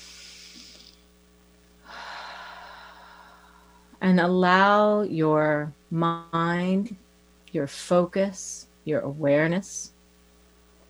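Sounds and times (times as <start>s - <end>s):
deep breathing in and out: 0.0s - 1.0s, 1.8s - 4.0s
speech: 4.0s - 7.0s, 7.6s - 9.9s.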